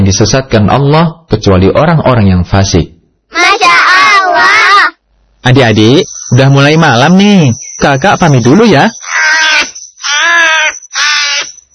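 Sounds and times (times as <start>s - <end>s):
speech: 0.1s - 9.7s
crow cawing: 9.0s - 11.6s.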